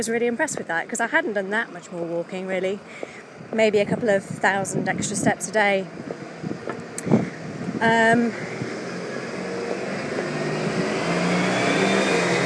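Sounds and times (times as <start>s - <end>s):
speech: 0.0s - 6.3s, 7.8s - 8.6s
big dustbin lorry engine roaring past: 0.0s - 12.4s
high-pitched whine or squeal: 8.3s - 12.4s.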